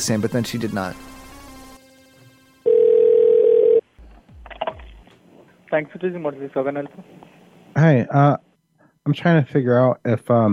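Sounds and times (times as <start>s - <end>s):
speech: 0.0s - 1.1s, 5.7s - 10.5s
telephone dial tone after dialing a number: 2.6s - 3.9s.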